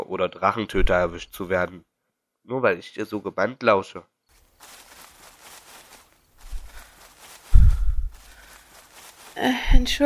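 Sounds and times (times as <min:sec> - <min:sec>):
speech: 0:00.0 - 0:04.8, 0:09.4 - 0:10.0
heavy footsteps thudding on the ground: 0:04.3 - 0:10.0.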